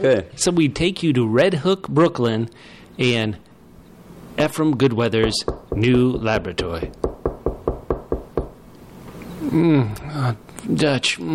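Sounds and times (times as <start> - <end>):
speech: 0.0 - 3.5, 4.4 - 7.1, 9.5 - 11.3
quick sharp knocks on a door: 5.2 - 6.4, 7.0 - 8.6.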